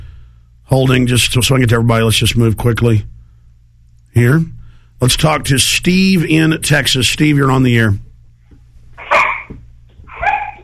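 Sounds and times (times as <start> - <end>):
speech: 0.7 - 3.2, 4.2 - 8.1
dogs barking in the background of a phone call: 9.0 - 10.6.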